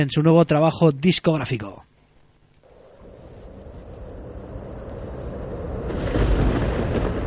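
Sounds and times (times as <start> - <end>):
speech: 0.0 - 1.9
thunderstorm rumble opening a folk metal album track: 2.7 - 7.2.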